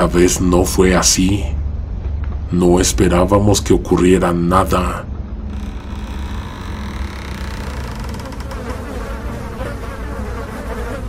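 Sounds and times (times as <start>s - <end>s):
speech: 0.0s - 1.6s, 2.5s - 5.1s
dense swarm of flies buzzing: 5.5s - 11.0s.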